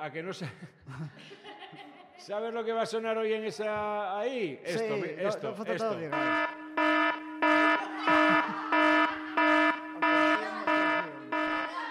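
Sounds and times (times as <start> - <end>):
speech: 0.0 - 6.5
laughter: 0.4 - 2.3, 4.7 - 6.4, 7.4 - 11.8
evacuation alarm buzzing: 6.0 - 11.8.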